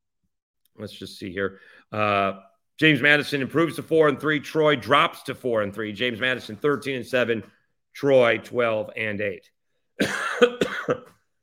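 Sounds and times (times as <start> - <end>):
speech: 0.8 - 11.2
person coughing with something caught in the throat: 10.0 - 11.2
throat clearing with something caught in the throat: 10.0 - 11.2.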